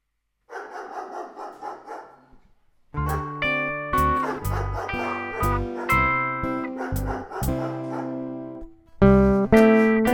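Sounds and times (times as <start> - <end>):
dog barking: 0.5 - 2.4, 3.0 - 3.4, 4.1 - 6.1, 6.7 - 8.2, 9.2 - 10.1.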